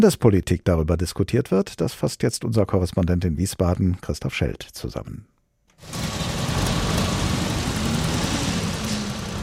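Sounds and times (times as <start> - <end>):
speech: 0.0 - 6.2
dense motorway traffic jam roar with idling cars: 5.9 - 9.4.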